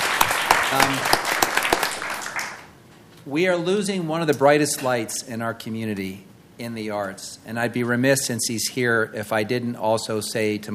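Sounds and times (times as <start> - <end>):
audience applause: 0.0 - 2.7
speech: 0.7 - 1.2, 3.2 - 10.7.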